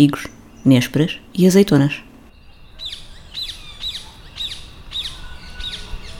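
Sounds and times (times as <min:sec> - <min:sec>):
speech: 0:00.0 - 0:02.1
rose-ringed parakeet squawking calls: 0:02.8 - 0:06.1.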